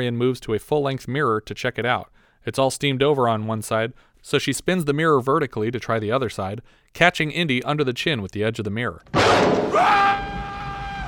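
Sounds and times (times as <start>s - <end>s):
speech: 0.0s - 10.3s
man screaming from a distance: 9.2s - 11.0s.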